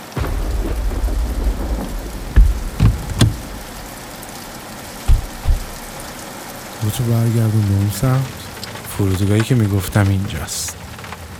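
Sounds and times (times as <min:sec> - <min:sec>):
deep rumbling thuds: 0:00.0 - 0:07.0
steady rain falling: 0:00.0 - 0:11.3
speech: 0:06.9 - 0:08.4, 0:09.0 - 0:10.8.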